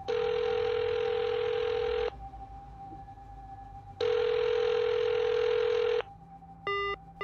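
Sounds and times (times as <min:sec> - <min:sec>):
telephone ringback tone of an unanswered call to a home: 0:00.1 - 0:02.1, 0:04.0 - 0:06.1.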